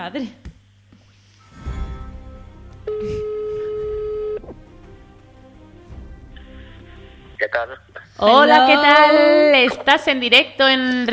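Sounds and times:
speech: 0:00.0 - 0:00.5, 0:07.5 - 0:11.1
telephone ringback tone while waiting to be picked up: 0:02.8 - 0:04.4.

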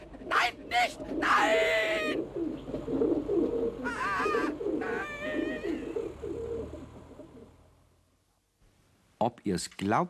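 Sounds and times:
pigeon cooing: 0:00.0 - 0:07.6
speech: 0:00.7 - 0:01.7, 0:09.2 - 0:10.0.

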